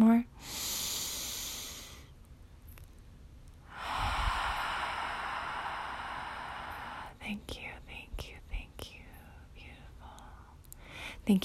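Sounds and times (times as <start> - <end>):
deep slow breath: 0.4 - 2.1, 3.7 - 7.2
speech: 7.3 - 8.3.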